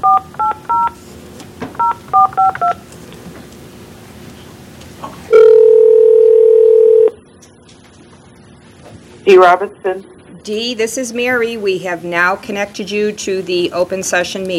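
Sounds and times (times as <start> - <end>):
telephone keypad tones dialing into a public meeting: 0.0 - 0.9, 1.8 - 2.8, 5.3 - 7.1
long steady loud telephone tone: 0.0 - 1.0, 5.3 - 7.2
speech: 9.3 - 14.5.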